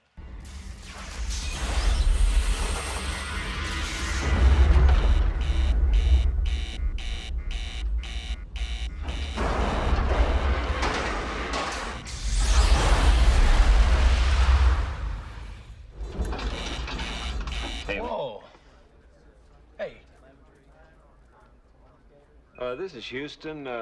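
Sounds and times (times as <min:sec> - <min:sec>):
rumbling explosion aboard a spacecraft in a film scene: 0:00.4 - 0:07.0, 0:08.9 - 0:16.3
whooshing bursts: 0:00.5 - 0:15.8
rapidly pulsing alarm buzzer aboard a spacecraft: 0:02.0 - 0:12.8, 0:16.4 - 0:18.0
speech: 0:22.9 - 0:23.8.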